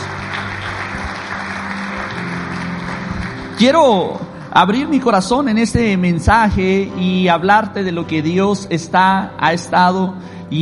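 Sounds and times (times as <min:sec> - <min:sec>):
room full of people applauding: 0:00.0 - 0:04.4
speech: 0:03.6 - 0:10.5.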